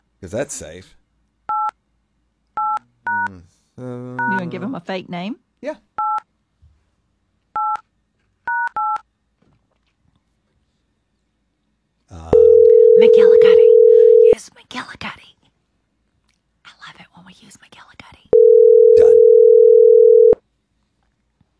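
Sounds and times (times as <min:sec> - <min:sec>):
speech: 0:00.2 - 0:01.0, 0:03.1 - 0:05.9
touch-tone beeps of a phone number being dialed: 0:12.4 - 0:14.4, 0:18.4 - 0:20.4.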